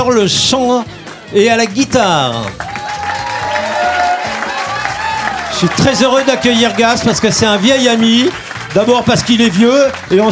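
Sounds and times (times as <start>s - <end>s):
speech: 0.0s - 2.7s, 5.6s - 10.3s
audience applause: 2.5s - 10.3s.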